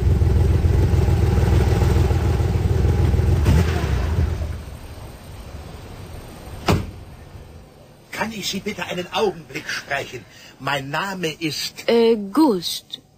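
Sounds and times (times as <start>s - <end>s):
green Porsche engine rumbling as the car pulls up: 0.0s - 12.1s
short sharp knock: 6.6s - 7.0s
speech: 8.4s - 13.1s.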